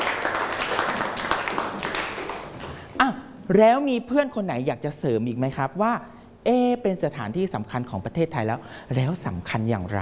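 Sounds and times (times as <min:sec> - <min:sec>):
classroom applause for a student: 0:00.0 - 0:02.9
speech: 0:03.0 - 0:09.9.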